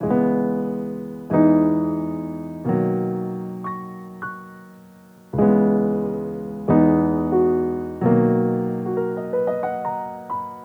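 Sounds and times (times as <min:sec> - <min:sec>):
dry piano playing in B major: 0:00.0 - 0:10.6.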